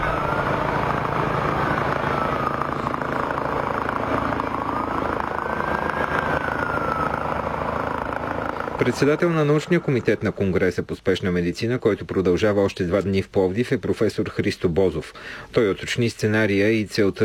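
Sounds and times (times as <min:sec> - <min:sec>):
medical helicopter rotors thumping: 0:00.0 - 0:10.4
siren wailing: 0:00.0 - 0:10.5
speech: 0:08.8 - 0:17.2.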